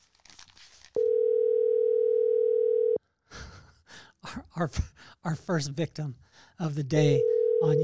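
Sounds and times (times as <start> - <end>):
electronic phone ring tone through a handset while dialing a call: 1.0 - 3.0, 7.2 - 7.8
speech: 4.6 - 7.8.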